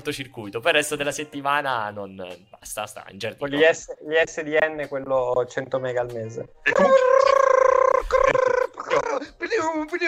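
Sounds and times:
speech: 0.0 - 7.4, 9.3 - 10.0
voice imitating a dial-up modem connecting: 6.7 - 9.0
laughter: 6.7 - 9.3.

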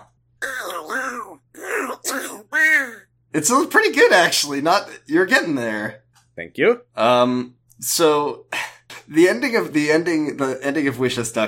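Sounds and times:
person imitating a cartoon duck with raspy squawking bursts: 0.0 - 3.1
speech: 3.4 - 11.4.

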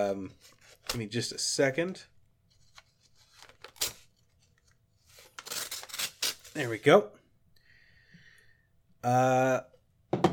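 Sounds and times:
speech: 0.0 - 2.1, 6.6 - 7.2, 9.0 - 10.2
sealed envelope being torn open: 3.2 - 4.1, 5.2 - 6.8.

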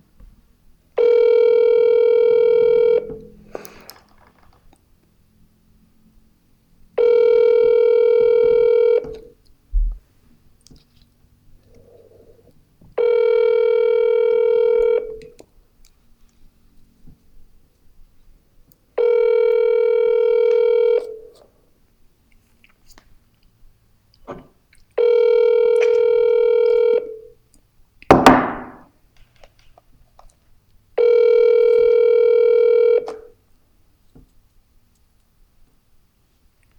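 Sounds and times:
telephone ringing: 1.0 - 3.4, 7.0 - 9.4, 13.0 - 15.4, 19.0 - 21.3, 25.0 - 27.4, 31.0 - 33.4.

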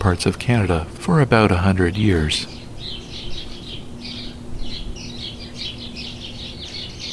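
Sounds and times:
speech: 0.0 - 2.6
faint low hum: 0.0 - 7.1
northern cardinal singing: 2.4 - 7.1.

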